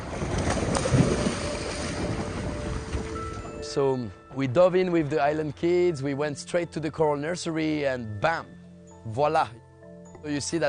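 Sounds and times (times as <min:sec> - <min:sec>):
boat engine droning on open water: 0:00.0 - 0:03.6
waves washing: 0:00.0 - 0:03.6
wind buffeting the microphone: 0:00.0 - 0:03.7
speech: 0:03.7 - 0:09.6, 0:10.2 - 0:10.6.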